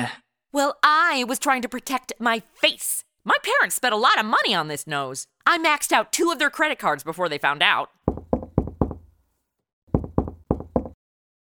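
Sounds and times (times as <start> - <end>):
speech: 0.0 - 8.0
knocking on a door: 8.1 - 9.1, 9.9 - 11.0.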